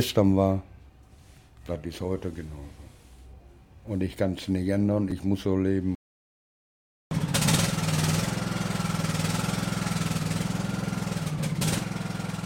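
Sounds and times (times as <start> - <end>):
speech: 0.0 - 0.7, 1.6 - 2.8, 3.9 - 6.0
new ride-on lawn mower engine running: 7.1 - 12.4.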